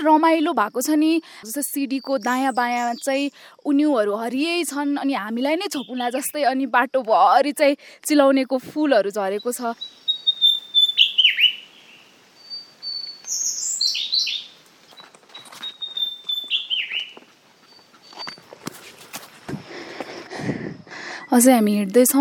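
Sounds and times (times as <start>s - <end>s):
speech: 0.0s - 10.3s, 21.3s - 22.1s
birds singing along a mountain path: 1.8s - 3.4s, 5.3s - 6.3s, 9.2s - 18.5s
rustling: 14.6s - 20.3s.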